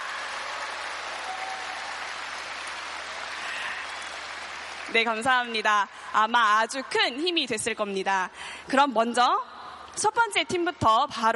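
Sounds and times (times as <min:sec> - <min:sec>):
large audience applauding: 0:00.0 - 0:05.6
speech: 0:04.9 - 0:11.3.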